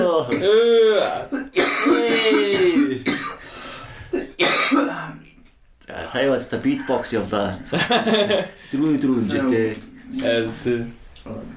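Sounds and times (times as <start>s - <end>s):
person clearing throat: 0.0s - 3.4s, 4.1s - 5.4s
speech: 0.2s - 2.4s, 6.1s - 11.5s
person coughing: 1.3s - 3.5s, 4.1s - 5.3s
laughter: 7.6s - 8.7s.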